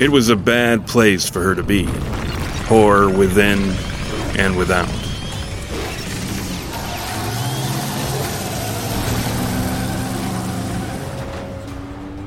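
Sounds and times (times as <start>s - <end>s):
speech: 0.0s - 5.0s
car engine roaring as car accelerates: 1.4s - 12.2s.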